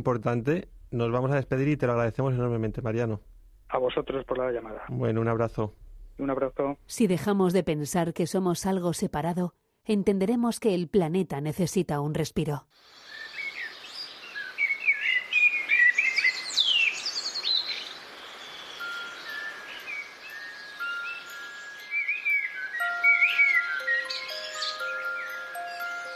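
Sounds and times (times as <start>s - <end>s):
speech: 0.0s - 13.0s
birds chirping and calling: 13.0s - 26.1s
long steady whistled notes: 18.8s - 26.1s.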